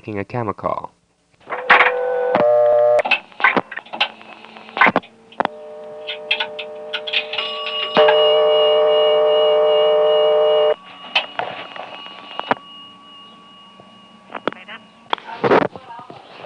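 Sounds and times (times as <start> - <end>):
long steady payphone tone: 1.4 - 3.0, 4.1 - 15.3
telephone dialing clicks through a payphone: 5.4 - 8.2
people talking: 14.4 - 16.2.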